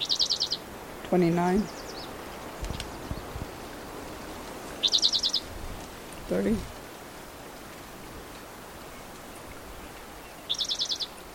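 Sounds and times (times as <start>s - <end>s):
bird trilling: 0.0s - 0.6s, 4.8s - 5.5s, 10.5s - 11.2s
hissy background: 0.0s - 11.3s
speech: 1.1s - 1.8s, 6.3s - 6.7s.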